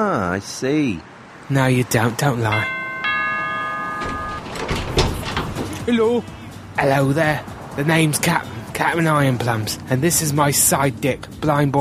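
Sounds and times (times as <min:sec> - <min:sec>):
speech: 0:00.0 - 0:02.8, 0:05.9 - 0:11.7
bell rung by pulling its rope: 0:02.5 - 0:05.6
loud clattering rustling bursts: 0:03.7 - 0:05.9.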